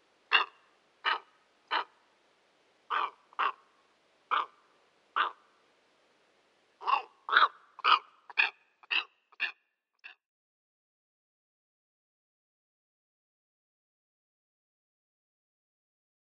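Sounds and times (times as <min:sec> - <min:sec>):
steppe eagle calling with rough croaking barks: 0:00.3 - 0:02.0, 0:02.9 - 0:03.7, 0:04.3 - 0:05.5, 0:06.8 - 0:10.2.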